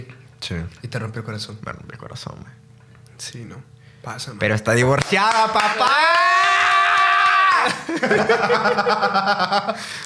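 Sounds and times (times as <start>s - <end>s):
speech: 0.4s - 2.6s, 3.2s - 6.4s, 7.6s - 10.0s
person screaming in a loud high-pitched scream: 5.8s - 7.9s
rhythmic pulsing laughter: 7.6s - 10.0s.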